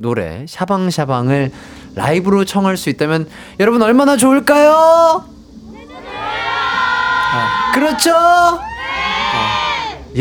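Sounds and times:
speech: 0.0s - 5.4s, 7.3s - 8.7s
children's high-pitched shouts and whoops: 5.7s - 10.1s
audience cheering: 5.9s - 10.0s.

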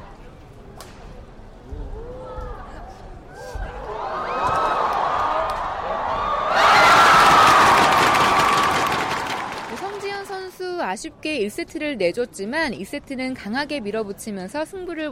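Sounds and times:
crowd of spectators at a badminton semifinal cheering and shouting: 3.5s - 10.4s
scattered applause: 3.9s - 10.6s
speech: 11.0s - 15.0s.

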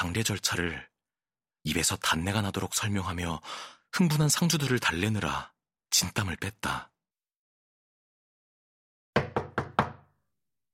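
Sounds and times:
speech: 0.1s - 0.9s, 1.6s - 6.9s
sharp knocks on a wooden door: 9.2s - 10.1s.

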